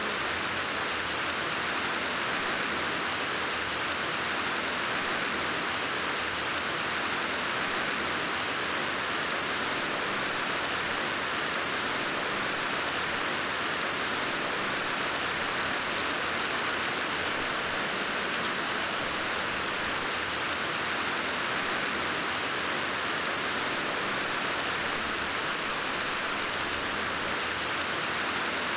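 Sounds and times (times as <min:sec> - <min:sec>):
rain: 0:00.0 - 0:28.7.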